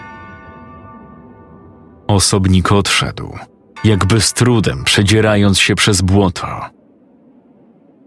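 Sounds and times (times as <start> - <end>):
deep bell tolling: 0.0 - 5.4
speech: 2.1 - 6.8.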